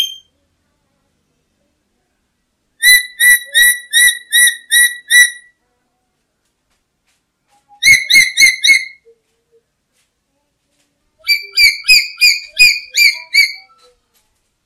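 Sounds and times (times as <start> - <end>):
black-capped lory harsh ringing calls: 0.0 - 0.3, 2.8 - 5.5, 7.8 - 9.0, 11.2 - 13.9.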